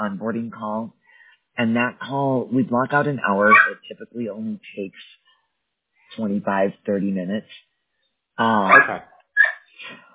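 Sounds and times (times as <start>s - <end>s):
speech: 0.0s - 1.0s, 1.6s - 5.2s, 6.1s - 7.7s, 8.4s - 9.1s
dog whimpering: 3.4s - 3.8s, 8.6s - 9.6s
dog yipping: 3.4s - 3.8s, 8.7s - 9.7s.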